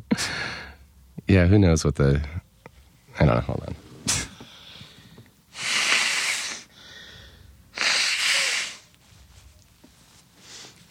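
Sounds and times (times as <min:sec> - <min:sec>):
speech: 0:01.3 - 0:02.4, 0:03.2 - 0:03.8
person blowing nose: 0:05.6 - 0:06.7, 0:07.7 - 0:08.9.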